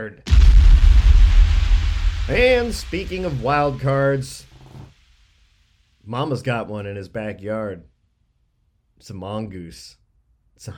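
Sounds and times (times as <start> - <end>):
speech: 0.0 - 0.5, 2.3 - 4.5, 6.1 - 7.9, 9.0 - 10.0, 10.6 - 10.7
explosion sound effect with heavy rumble: 0.3 - 5.4.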